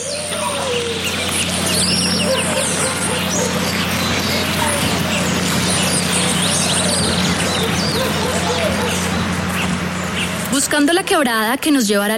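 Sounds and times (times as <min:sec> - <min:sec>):
dense chorus of birds chirping and calling in a jungle: 0:00.0 - 0:11.0
steady low hum of jungle forest ambience: 0:00.0 - 0:12.1
speech: 0:11.1 - 0:12.1.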